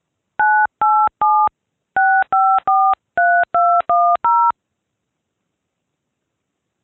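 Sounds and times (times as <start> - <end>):
touch-tone phone keypad beeps dialing a number: 0.4 - 4.5.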